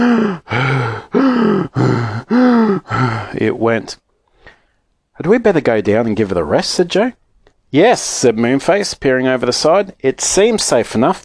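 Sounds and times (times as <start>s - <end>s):
speech: 0.0s - 0.6s, 3.4s - 4.0s, 5.2s - 11.2s
voice imitating labored panting of a tired aeroplane: 0.0s - 3.4s.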